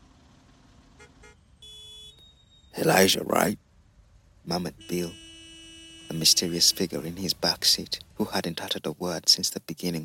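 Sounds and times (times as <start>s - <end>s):
low traffic rumble: 0.0s - 2.0s, 2.7s - 10.0s
car horns honking in a traffic queue: 0.9s - 3.0s, 4.5s - 8.2s
speech: 2.8s - 3.6s, 4.5s - 5.2s, 6.1s - 10.0s.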